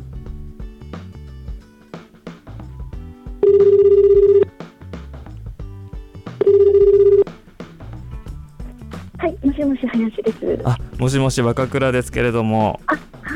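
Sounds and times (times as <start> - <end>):
soft music: 0.0 - 13.3
telephone ringback tone while placing a call: 3.4 - 4.5, 6.4 - 7.3
speech: 3.5 - 4.0, 9.6 - 13.0.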